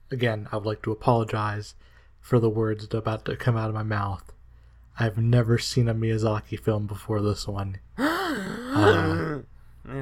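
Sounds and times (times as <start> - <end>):
speech: 0.1 - 4.4, 5.0 - 10.0
dramatic gasp: 8.0 - 9.4
breathy vocal sound: 8.0 - 10.0.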